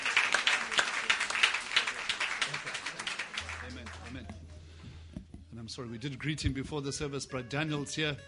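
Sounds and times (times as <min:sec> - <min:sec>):
audience applauding at a church service: 0:00.0 - 0:04.4
speech: 0:05.7 - 0:08.2.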